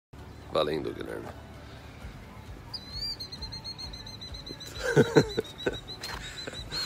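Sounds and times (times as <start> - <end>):
speech: 0.5 - 1.4, 5.0 - 5.8
agitated small bird chirping rapidly: 2.6 - 6.8
laughter: 4.6 - 6.8.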